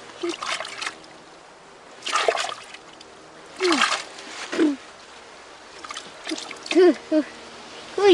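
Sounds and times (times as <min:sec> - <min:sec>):
water splashing while washing at a lake: 0:00.2 - 0:01.1, 0:02.0 - 0:04.8, 0:05.7 - 0:06.9
brief vocal exclamations: 0:03.6 - 0:03.9.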